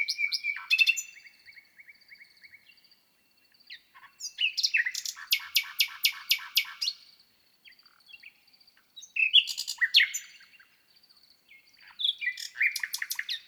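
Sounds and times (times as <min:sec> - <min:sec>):
nightingale singing: 0:00.0 - 0:02.8, 0:03.4 - 0:07.0, 0:09.0 - 0:10.7, 0:11.5 - 0:13.4.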